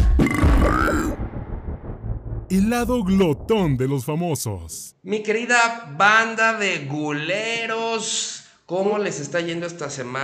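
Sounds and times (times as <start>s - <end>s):
long deep rumbling burp: 0.2s - 1.2s
speech: 2.5s - 10.2s.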